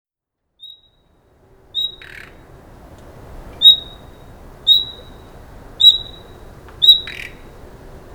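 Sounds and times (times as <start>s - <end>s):
common nightingale Luscinia megarhynchos whistle calls: 1.8s - 2.4s, 3.6s - 7.6s.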